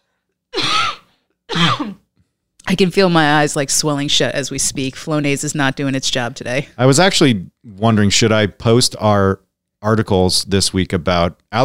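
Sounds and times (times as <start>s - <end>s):
person coughing into elbow: 0.6s - 2.1s
speech: 1.8s - 2.0s, 2.7s - 11.6s.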